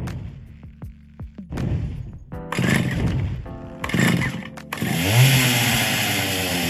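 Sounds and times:
chainsaw starting and revving to full throttle: 0:02.5 - 0:03.2, 0:03.8 - 0:06.6.

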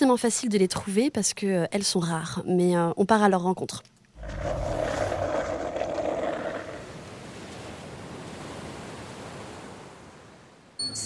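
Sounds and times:
speech: 0:00.0 - 0:04.7
skateboard wheels rolling over rough asphalt on a street in Nantes France: 0:04.2 - 0:07.0.

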